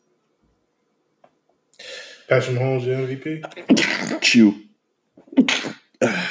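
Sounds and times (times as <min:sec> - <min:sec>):
speech: 0:02.3 - 0:04.7
person sneezing loudly: 0:03.4 - 0:04.4, 0:05.2 - 0:06.2.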